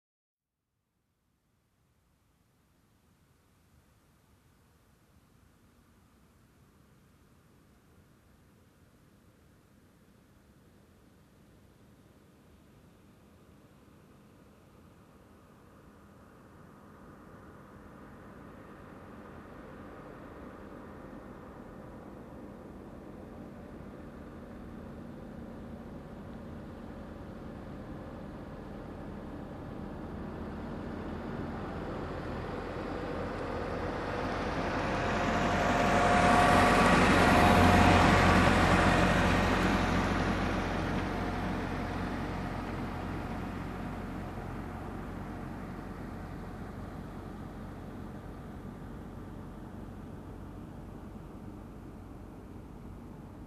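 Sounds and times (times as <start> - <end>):
truck driving by slowly: 14.3 - 53.4.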